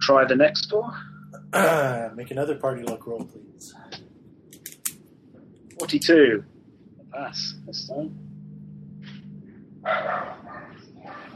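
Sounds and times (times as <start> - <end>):
speech: 0.1 - 4.0, 5.8 - 6.5, 7.1 - 8.2, 9.8 - 10.4
dog barking inside a house: 9.9 - 11.3.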